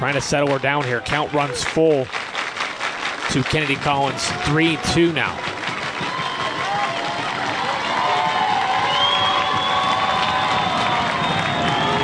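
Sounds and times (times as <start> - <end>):
speech: 0.0 - 2.3, 3.3 - 6.1
large crowd of sports fans cheering and shouting in the stands: 0.0 - 12.0
whistles from sports fans in the stands: 6.1 - 7.0, 8.6 - 12.0.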